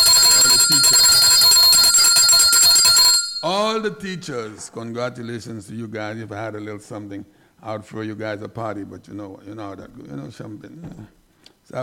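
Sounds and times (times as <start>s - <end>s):
bell ringing: 0.0s - 3.8s
speech: 3.5s - 11.8s.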